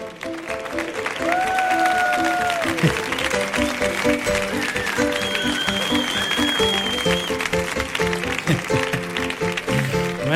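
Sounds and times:
large audience clapping for a speaker: 0.0s - 10.3s
music playing: 0.0s - 10.3s
whistles from an audience: 4.7s - 7.4s.

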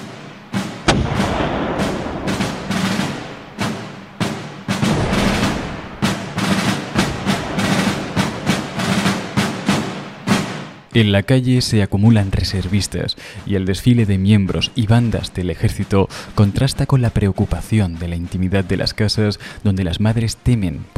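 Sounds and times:
heavy booming cannon blasts in Strasbourg: 0.6s - 10.9s
rapid overlapping crossfire gunshots in Strasbourg: 0.6s - 10.9s
speech: 11.0s - 20.9s.

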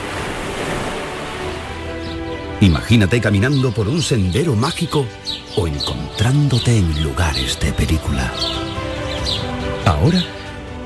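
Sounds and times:
ocean surf washing onto a beach: 0.0s - 1.9s
speech: 2.6s - 10.4s.

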